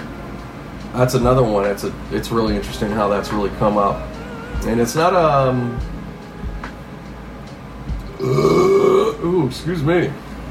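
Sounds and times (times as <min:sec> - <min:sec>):
speech: 0:01.0 - 0:05.9, 0:08.2 - 0:08.6, 0:09.3 - 0:10.2
long deep burp after a meal of sausage rolls: 0:08.1 - 0:09.3.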